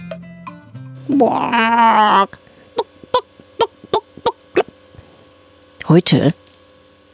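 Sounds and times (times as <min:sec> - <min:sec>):
speech: 0:01.1 - 0:02.4, 0:05.9 - 0:06.4
hen squawking: 0:01.1 - 0:04.7.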